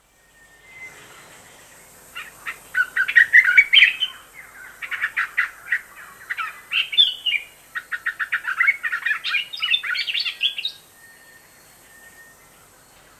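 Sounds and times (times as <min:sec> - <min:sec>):
bird chirping and twittering: 0:00.5 - 0:12.5.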